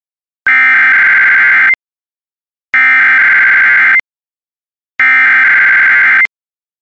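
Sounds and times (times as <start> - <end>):
NOAA weather radio warning alarm tone: 0.5 - 1.8, 2.8 - 4.0, 5.0 - 6.3.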